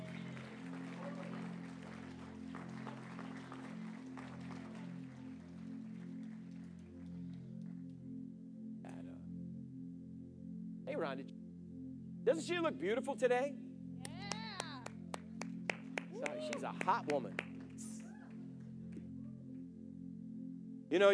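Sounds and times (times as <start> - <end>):
crowd clapping: 0.0 - 7.8, 14.0 - 19.0
sustained low musical drone: 0.0 - 14.1, 14.8 - 21.1
speech: 11.0 - 11.3, 12.2 - 13.6, 16.6 - 17.4, 20.9 - 21.1.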